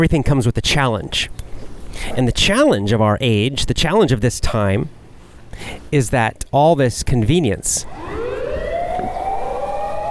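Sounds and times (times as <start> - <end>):
speech: 0.0 - 5.0, 5.6 - 8.2
emergency vehicle siren wailing: 7.8 - 10.0.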